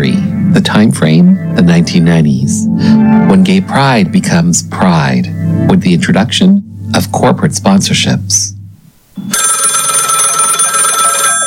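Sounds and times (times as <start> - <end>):
speech: 0.6 - 8.5
telephone bell ringing: 9.2 - 11.4.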